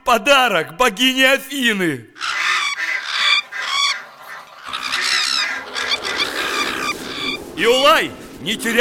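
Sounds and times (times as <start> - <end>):
speech: 0.1 - 2.4, 7.6 - 8.7
dense flock of attacking birds squawking and honking: 2.2 - 8.7.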